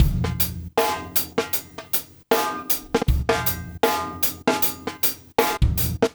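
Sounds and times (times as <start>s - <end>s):
slow chill pop rock drum beat: 0.0s - 6.1s.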